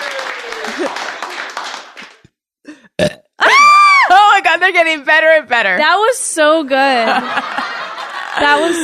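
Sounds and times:
laughter: 0.4s - 1.3s, 7.0s - 8.8s
speech: 0.7s - 1.0s, 4.6s - 7.6s, 8.4s - 8.8s
long rough forced burp: 2.7s - 3.4s.

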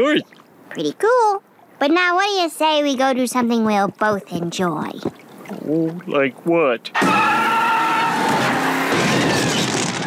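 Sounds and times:
speech: 0.0s - 7.4s
car engine roaring during a burnout: 6.9s - 10.0s
car tires squealing during a burnout: 6.9s - 10.0s.

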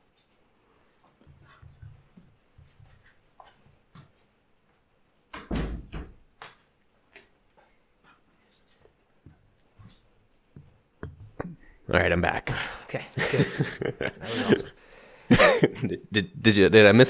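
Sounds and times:
shuffling: 0.0s - 4.4s, 6.4s - 10.8s
door swinging shut with heavy thud: 5.4s - 6.2s
speech: 11.5s - 14.7s, 15.8s - 17.0s
laughter: 13.2s - 16.1s.

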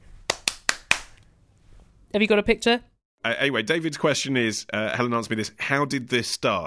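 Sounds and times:
hand jive clapping and knee slapping: 0.2s - 1.2s
speech: 2.1s - 6.6s.

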